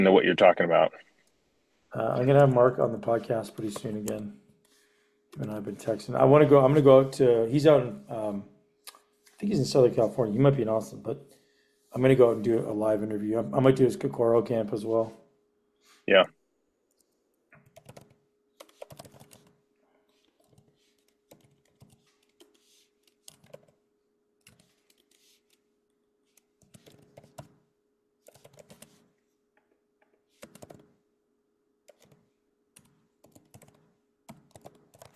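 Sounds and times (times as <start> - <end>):
speech: 0.0 - 1.1, 1.9 - 4.4, 5.3 - 8.5, 9.4 - 15.2, 16.1 - 16.3
faint constant hum: 0.0 - 4.7, 5.4 - 15.3
typing on a computer keyboard: 16.9 - 23.8, 24.4 - 25.6, 26.3 - 27.6, 28.2 - 29.1, 30.3 - 30.9, 31.9 - 32.2, 32.8 - 35.1.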